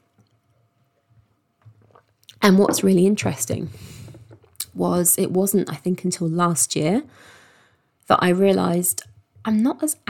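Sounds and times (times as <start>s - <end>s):
person sipping water: 1.6s - 2.4s
speech: 2.4s - 3.9s, 4.8s - 7.4s, 8.1s - 10.0s.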